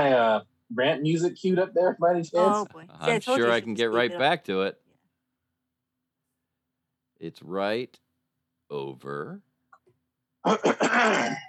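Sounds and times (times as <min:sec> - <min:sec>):
speech: 0:00.4 - 0:04.8, 0:07.2 - 0:08.0, 0:08.7 - 0:09.5, 0:10.4 - 0:11.4
throat clearing: 0:10.4 - 0:11.4.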